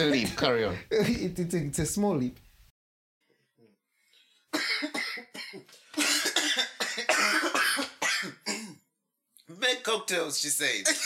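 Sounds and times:
speech: 0.0s - 2.5s, 9.9s - 11.0s
people coughing: 4.5s - 8.9s, 10.9s - 11.0s.

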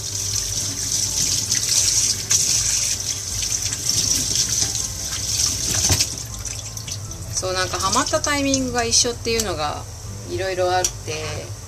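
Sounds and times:
tap water running into a sink while washing coffee-soaked cloth lunch wrappings: 0.0s - 8.7s
speech: 7.4s - 11.6s.

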